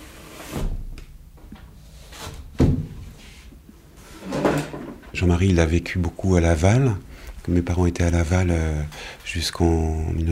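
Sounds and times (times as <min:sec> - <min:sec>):
veranda door being pulled shut: 0:04.0 - 0:05.2
speech: 0:05.2 - 0:10.2.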